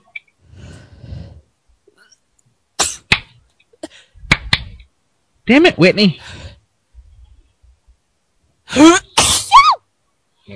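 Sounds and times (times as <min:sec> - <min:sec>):
person sneezing: 0:02.8 - 0:03.1, 0:08.7 - 0:09.8
speech: 0:05.5 - 0:06.4.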